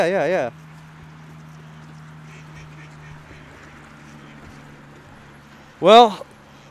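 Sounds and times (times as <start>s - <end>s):
speech: 0.0s - 0.6s, 5.8s - 6.3s
constant low hum: 0.0s - 6.6s
ducks quacking and honking while being fed at a pond: 1.7s - 5.8s.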